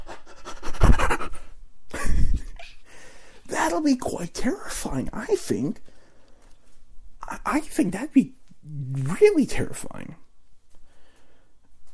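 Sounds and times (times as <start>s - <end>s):
voice imitating heavy breathy panting of someone sprinting: 0.0s - 1.6s
speech: 3.7s - 5.9s, 7.4s - 10.2s.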